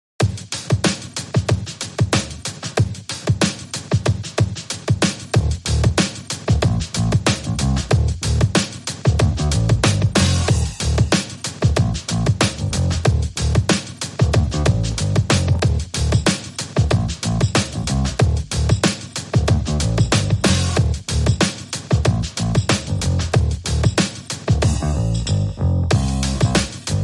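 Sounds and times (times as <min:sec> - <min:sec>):
drums: 0:00.2 - 0:27.0
bass: 0:02.2 - 0:02.4, 0:05.4 - 0:18.8, 0:19.4 - 0:21.4, 0:22.0 - 0:27.0.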